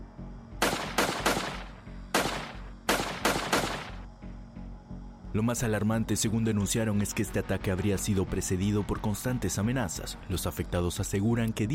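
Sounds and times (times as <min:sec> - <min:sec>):
gunshots fired at a house: 0:00.6 - 0:04.0
speech: 0:05.4 - 0:11.7.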